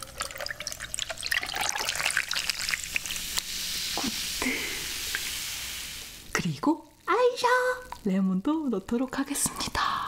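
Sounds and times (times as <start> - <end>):
cola pouring over huge ice cubes: 0.0 - 6.2
cola fizzing crackling hiss: 0.0 - 10.0
speech: 6.6 - 9.8.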